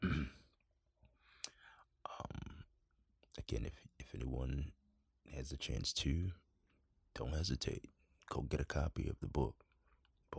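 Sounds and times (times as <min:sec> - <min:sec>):
person coughing: 0:00.0 - 0:00.5
throat clearing: 0:00.0 - 0:00.5
speech: 0:03.4 - 0:06.4, 0:07.2 - 0:09.7.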